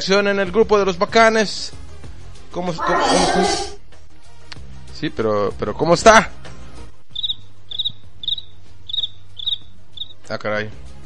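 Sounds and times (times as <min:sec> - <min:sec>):
speech: 0:00.0 - 0:01.8, 0:02.6 - 0:03.7, 0:05.0 - 0:06.5, 0:10.3 - 0:10.8
cricket chirping in quick trilled pulses: 0:07.1 - 0:10.2.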